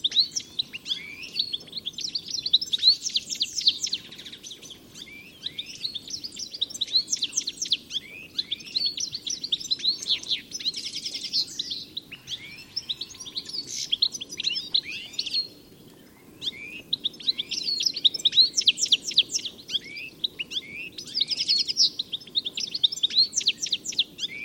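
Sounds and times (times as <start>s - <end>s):
birds chirping in a busy chorus: 0.0s - 24.4s.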